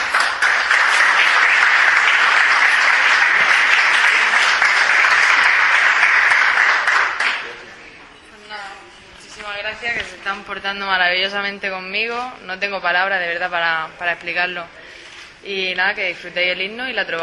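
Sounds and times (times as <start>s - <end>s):
large crowd applauding at a supporters' club gathering: 0.0s - 7.7s
speech: 10.3s - 14.8s, 15.4s - 17.2s.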